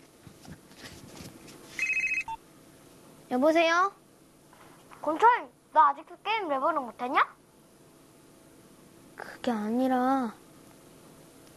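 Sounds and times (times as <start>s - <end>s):
electronic telephone ringing: 1.8s - 2.4s
speech: 3.3s - 4.0s, 5.0s - 7.4s, 9.4s - 10.4s.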